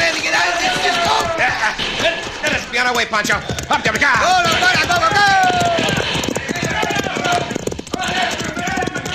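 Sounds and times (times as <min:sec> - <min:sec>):
horse hooves galloping as riders flee: 0:00.0 - 0:09.1
speech: 0:02.9 - 0:05.3.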